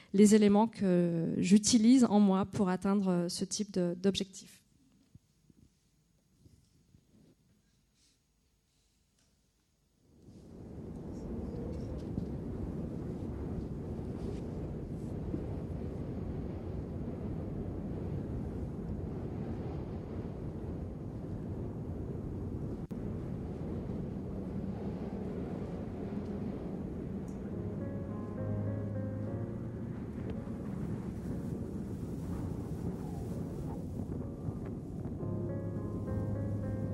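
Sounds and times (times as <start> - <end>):
speech: 0.1 - 4.6
strong wind buffeting the microphone: 10.2 - 36.9
faint droning tone: 19.2 - 36.9.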